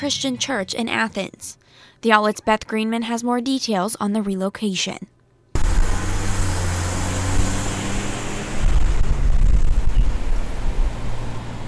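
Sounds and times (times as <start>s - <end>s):
speech: 0.0s - 5.1s
louder vehicle passing: 5.6s - 11.6s
moderate street traffic passing: 5.6s - 11.6s.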